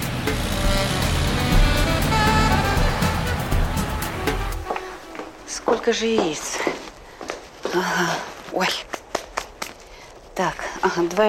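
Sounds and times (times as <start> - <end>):
truck engine rumbling as the truck turns around and drives off: 0.0 - 4.7
speech: 5.8 - 6.9, 7.7 - 9.0, 10.4 - 11.2.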